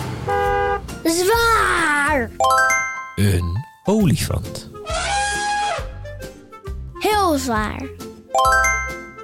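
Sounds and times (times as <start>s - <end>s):
car horn honking: 0.2s - 1.0s
speech: 1.1s - 5.1s, 7.3s - 8.8s.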